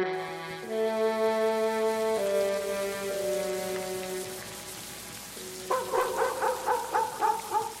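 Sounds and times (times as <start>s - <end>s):
sustained droning musical tones: 0.2s - 6.3s
steady storm rain pattering: 0.2s - 7.7s
dog barking out in the storm: 5.6s - 7.7s.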